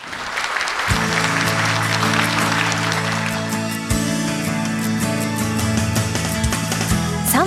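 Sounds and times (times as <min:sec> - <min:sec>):
audience applause: 0:00.0 - 0:04.6
bright musical outro with sustained tones and low hits: 0:01.0 - 0:06.8.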